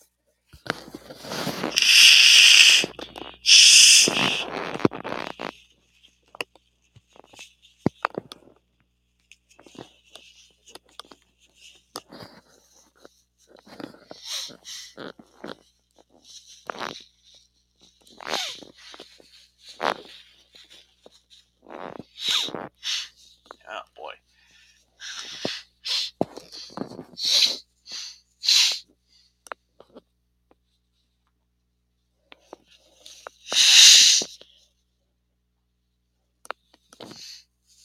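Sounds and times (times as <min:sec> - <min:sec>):
nose blowing: 0:01.2 - 0:05.4, 0:21.7 - 0:23.1, 0:25.0 - 0:28.8, 0:33.4 - 0:34.4.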